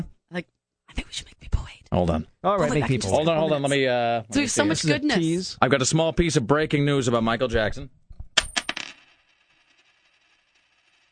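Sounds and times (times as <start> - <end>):
speech: 0.0 - 1.3, 1.9 - 8.0
coins dropping onto a hard surface: 8.4 - 11.0.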